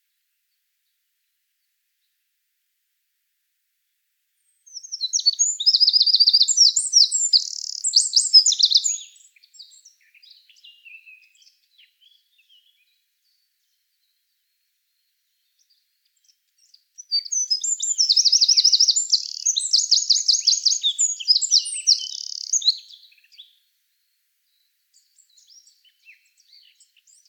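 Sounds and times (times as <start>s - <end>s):
Eurasian wren Troglodytes troglodytes singing trills and bright notes: 4.5s - 14.2s, 14.9s - 23.6s, 24.5s - 27.2s.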